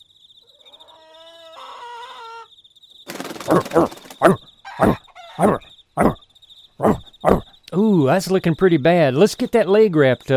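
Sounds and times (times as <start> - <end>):
chickens just out of their coop clucking: 0.5 - 2.5, 3.1 - 6.2
speech: 3.5 - 5.7, 8.0 - 10.3
chickens' high tonal calling: 3.5 - 6.2, 6.8 - 7.8.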